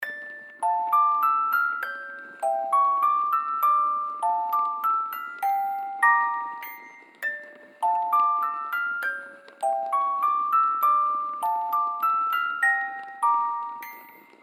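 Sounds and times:
eerie music box suspense horror loop: 0:00.0 - 0:14.4.

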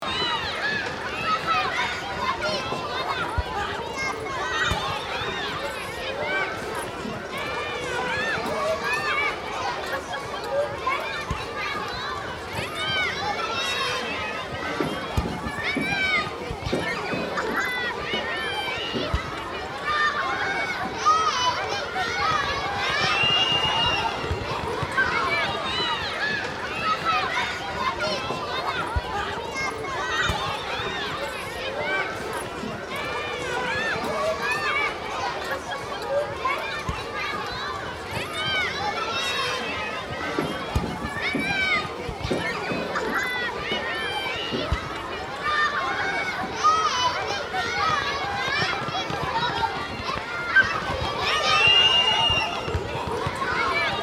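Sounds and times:
children playing on an elementary school playground: 0:00.0 - 0:54.0.

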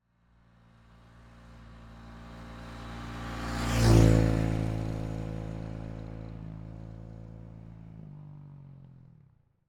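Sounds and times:
distant motorbike passing by: 0:02.0 - 0:06.6.

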